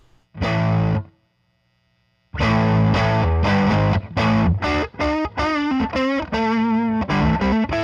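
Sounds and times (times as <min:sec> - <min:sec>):
electric guitar through a diode-clipping overdrive pedal: 0:00.4 - 0:01.1, 0:02.4 - 0:07.8.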